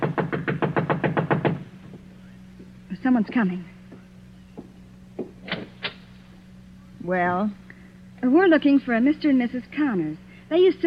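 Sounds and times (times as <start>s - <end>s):
knocking on a door: 0.0s - 2.0s, 4.6s - 5.4s
speech: 3.0s - 3.8s, 7.1s - 7.6s, 8.2s - 10.8s.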